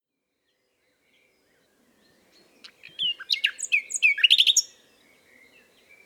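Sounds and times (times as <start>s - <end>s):
common nightingale Luscinia megarhynchos song: 0.3s - 6.0s.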